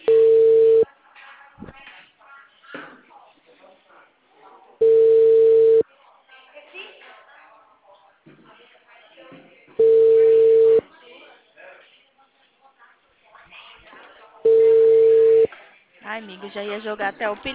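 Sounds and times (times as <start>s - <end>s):
unanswered telephone call ringing tone: 0.0s - 0.8s, 4.8s - 5.8s, 9.8s - 10.8s, 14.5s - 15.5s
speech: 16.2s - 17.5s.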